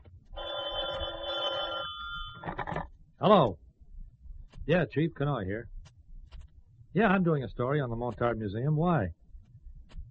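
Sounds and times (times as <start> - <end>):
low hum: 0.0 - 10.0
telephone ringing in an apartment: 0.3 - 2.8
speech: 3.2 - 3.6, 4.7 - 5.7, 6.9 - 9.2.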